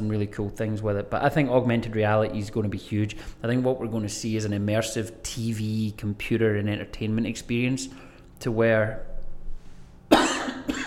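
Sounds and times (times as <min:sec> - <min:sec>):
speech: 0:00.0 - 0:09.1
COVID cough from a tickle in the throat: 0:10.1 - 0:10.8.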